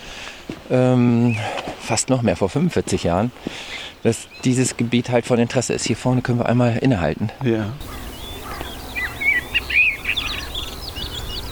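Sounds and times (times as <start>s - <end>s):
speech: 0.7s - 8.0s
common blackbird singing: 1.1s - 1.5s, 7.8s - 11.5s.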